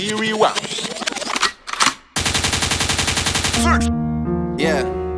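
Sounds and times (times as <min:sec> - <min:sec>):
speech: 0:00.0 - 0:01.0, 0:03.7 - 0:04.0, 0:04.6 - 0:05.0
rapid-fire gunshot sound effect: 0:02.2 - 0:03.9
sharp noisy bursts: 0:02.2 - 0:03.9.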